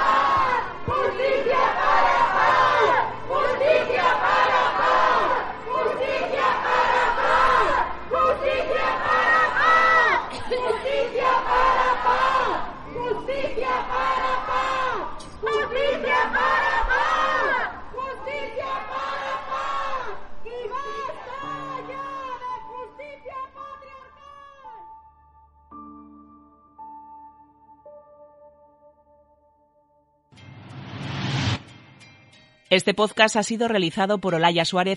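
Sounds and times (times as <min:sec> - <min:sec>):
large protest crowd chanting a slogan demanding justice in unison: 0:00.0 - 0:23.9
speech: 0:32.7 - 0:34.9.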